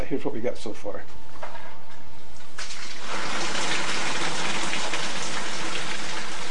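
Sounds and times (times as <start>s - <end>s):
speech: 0.1s - 1.3s
water falling from a pump-fed sculpture fountain: 3.0s - 6.5s.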